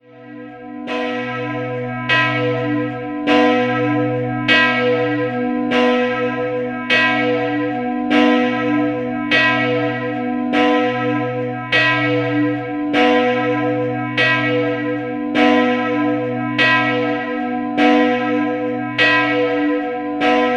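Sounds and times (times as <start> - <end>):
church bells ringing in St. Michael ob Bleiburg: 0.0 - 20.5.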